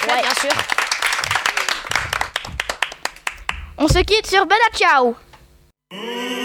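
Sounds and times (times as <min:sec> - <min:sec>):
school class clapping: 0:00.0 - 0:03.7
speech: 0:00.1 - 0:01.6, 0:03.8 - 0:05.2, 0:05.9 - 0:06.3.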